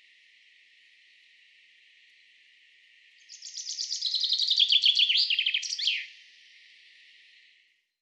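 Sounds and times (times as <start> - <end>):
common chaffinch Fringilla coelebs song: 3.2 - 7.4.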